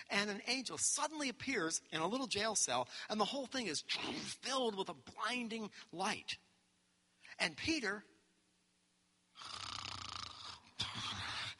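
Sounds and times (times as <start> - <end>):
speech: 0.0 - 6.4, 7.4 - 8.1
man snoring in deep sleep in a jail cell: 9.4 - 11.5.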